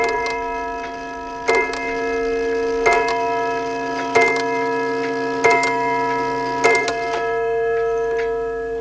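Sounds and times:
clock striking six o'clock with chimes: 0.0s - 8.7s.

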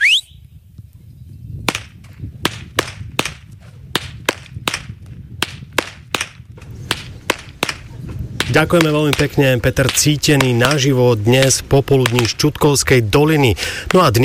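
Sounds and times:
shepherds cracking whips outdoors: 1.7s - 10.8s
speech: 8.6s - 14.2s.

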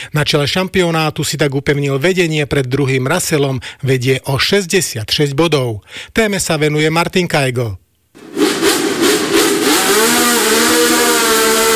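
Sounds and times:
speech: 0.0s - 8.3s
1960s Formula 1 racing car engine screaming past: 8.3s - 11.7s.

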